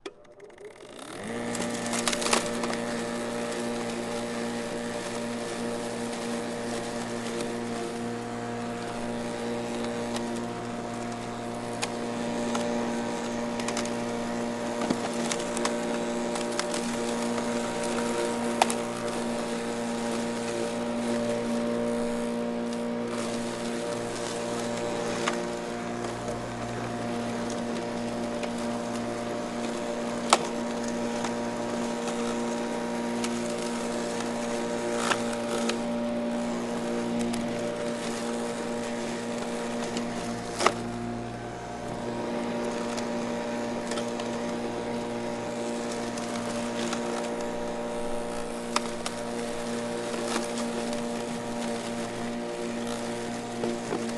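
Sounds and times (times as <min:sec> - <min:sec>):
electric mower cutting grass and trimming branches: 0:00.0 - 0:54.1.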